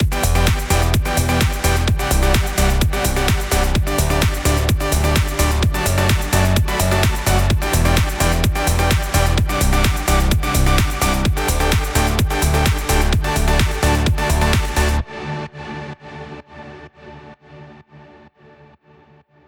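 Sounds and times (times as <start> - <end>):
layered synth bass with light overdrive: 0.0 - 15.1.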